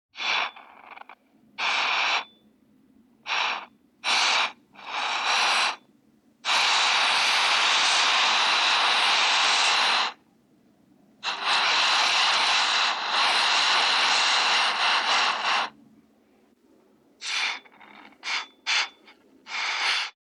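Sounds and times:
soldering iron: 0.2s - 2.3s, 3.3s - 5.8s, 6.4s - 10.2s, 11.2s - 15.8s, 17.2s - 20.2s.

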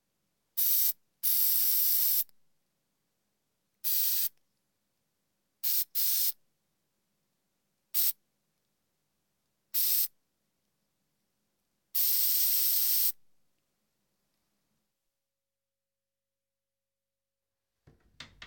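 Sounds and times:
deodorant spray: 0.6s - 2.3s, 3.9s - 4.3s, 5.6s - 6.4s, 8.0s - 8.2s, 9.8s - 10.1s, 12.0s - 13.2s.

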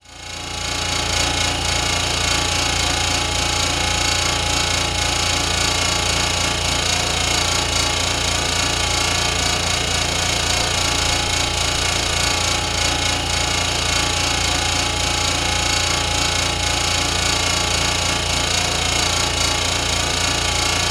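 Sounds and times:
refrigerator: 0.2s - 20.8s.

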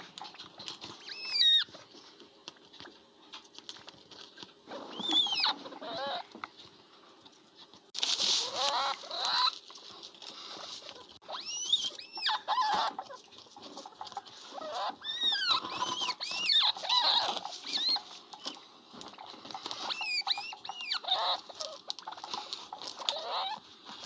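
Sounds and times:
jerboa chattering with high squeaks and whistled notes: 0.0s - 1.8s, 4.7s - 6.4s, 8.4s - 9.7s, 10.7s - 24.0s
scratchy patter: 0.0s - 24.0s.

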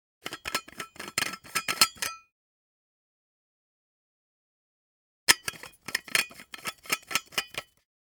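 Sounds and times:
thermos being unscrewed: 0.2s - 2.2s, 5.3s - 7.8s.

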